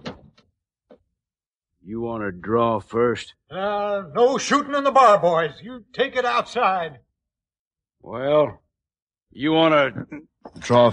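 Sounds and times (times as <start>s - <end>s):
door shutting with a thump in an old Western bar: 0.0s - 1.0s
speech: 1.9s - 7.1s, 8.0s - 8.6s, 9.3s - 10.9s.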